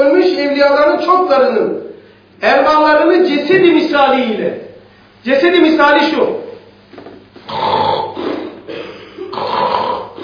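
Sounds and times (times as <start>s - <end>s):
speech: 0.6s - 4.6s, 5.2s - 6.4s, 7.5s - 7.8s
voice imitating snoring in raspy rumbles: 7.5s - 10.2s.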